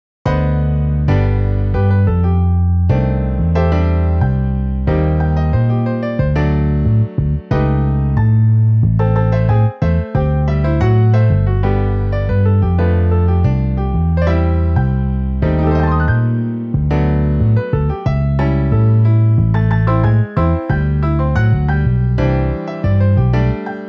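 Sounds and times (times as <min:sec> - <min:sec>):
bass: 0:00.2 - 0:23.8
piano: 0:00.2 - 0:23.8.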